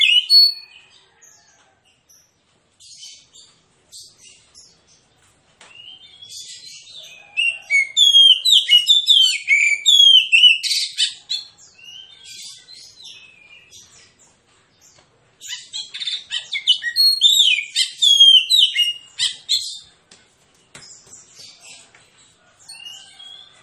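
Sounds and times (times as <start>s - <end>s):
Oriental magpie-robin singing aggressive fighting-style song: 7.4s - 11.5s, 15.5s - 19.8s.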